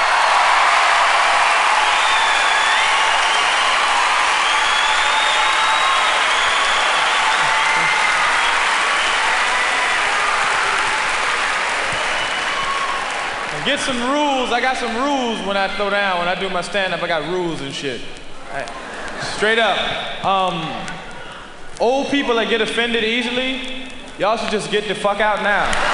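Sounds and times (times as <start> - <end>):
faint cheers and whoops: 0.0 - 14.4
audience applause at a stand-up comedy performance: 0.0 - 16.3, 25.2 - 25.9
speech: 13.8 - 21.0, 21.8 - 25.9.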